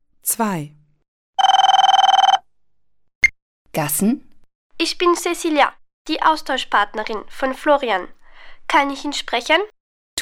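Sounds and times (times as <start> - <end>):
speech: 0.4 - 0.8, 3.8 - 10.1
answering machine beep after a recorded home telephone greeting: 1.4 - 2.4.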